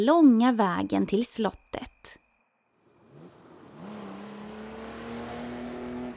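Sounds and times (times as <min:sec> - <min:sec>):
speech: 0:00.0 - 0:02.2
car engine revving and accelerating: 0:02.8 - 0:06.1
roar of tires on a rough gravel road: 0:02.9 - 0:06.1.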